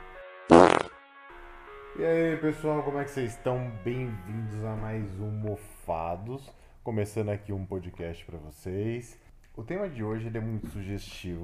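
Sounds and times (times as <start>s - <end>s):
loud sputtering fart: 0.5s - 1.0s
speech: 2.0s - 11.4s.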